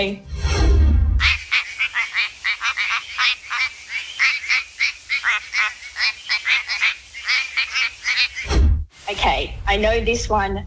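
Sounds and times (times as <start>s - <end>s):
speech: 0.0s - 0.3s, 9.4s - 10.6s
quacking frog croaking: 1.2s - 8.5s.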